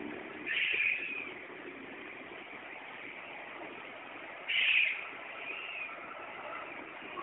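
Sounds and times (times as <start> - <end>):
black-naped oriole calling: 0.4 - 1.4, 4.4 - 7.2.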